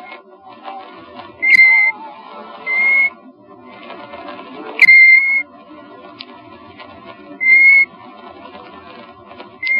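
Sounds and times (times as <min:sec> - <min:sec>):
golden plover whistling: 0:01.4 - 0:02.0, 0:02.6 - 0:03.1, 0:04.8 - 0:05.4, 0:07.4 - 0:07.9.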